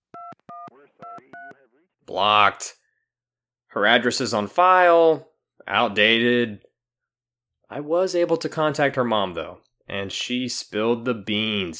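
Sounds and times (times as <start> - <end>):
touch-tone telephone keypad beeps: 0.1 - 1.6
speech: 2.1 - 2.8, 3.7 - 6.6, 7.7 - 11.7.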